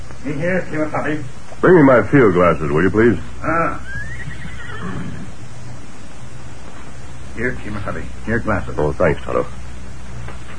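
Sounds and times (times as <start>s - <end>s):
speech: 0.2s - 4.0s, 7.4s - 9.6s
horse neighing: 3.4s - 5.4s.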